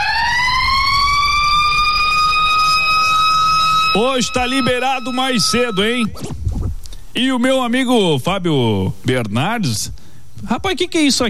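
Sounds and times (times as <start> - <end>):
siren wailing: 0.0 - 6.3
low rumbling noise: 0.0 - 7.1
speech: 4.0 - 6.4, 7.2 - 11.2.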